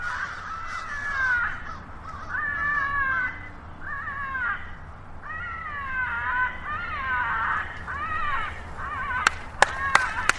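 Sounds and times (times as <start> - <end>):
recorded distressed crow caws played through a speaker: 0.0 - 10.3
sharp hand claps: 9.2 - 10.3.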